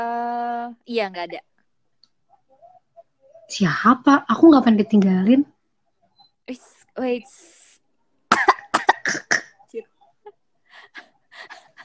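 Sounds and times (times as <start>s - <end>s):
speech: 0.8s - 1.5s, 3.5s - 5.5s, 6.5s - 7.6s
person coughing: 8.3s - 9.5s.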